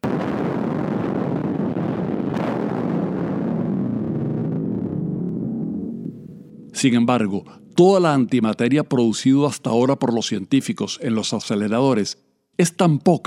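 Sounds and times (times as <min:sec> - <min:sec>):
nuclear bomb explosion sound effect with low roar and rumble: 0:00.0 - 0:08.1
speech: 0:06.8 - 0:13.2.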